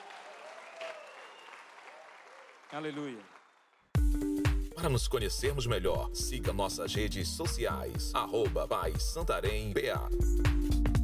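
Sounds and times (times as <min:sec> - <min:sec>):
church congregation clapping during a service: 0:00.0 - 0:03.9
speech: 0:02.7 - 0:03.4, 0:04.8 - 0:10.7.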